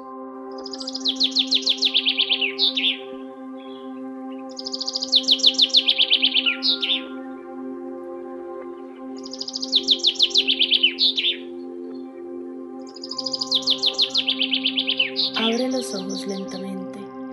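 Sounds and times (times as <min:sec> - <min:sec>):
birds singing in bright rapid trills: 0:00.5 - 0:16.6.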